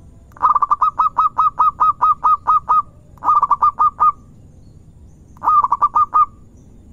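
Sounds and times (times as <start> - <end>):
zebra dove cooing: 0.4 - 4.3, 5.4 - 6.4.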